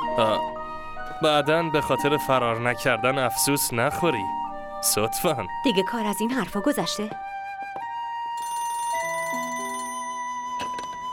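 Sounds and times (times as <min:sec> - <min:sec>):
speech: 0:00.2 - 0:00.5, 0:01.2 - 0:07.3
electronic telephone ringtone: 0:08.4 - 0:11.1.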